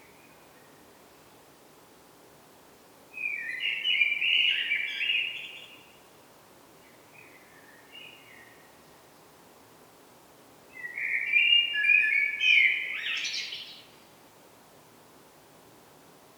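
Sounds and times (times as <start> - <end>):
common blackbird Turdus merula song: 3.2 - 6.0, 6.8 - 8.8, 10.7 - 14.0.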